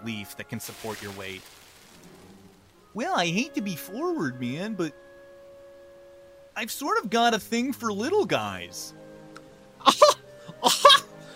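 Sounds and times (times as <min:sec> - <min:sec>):
speech: 0:00.0 - 0:01.6, 0:02.9 - 0:05.1, 0:06.6 - 0:09.1
short harsh coughs: 0:09.8 - 0:11.1.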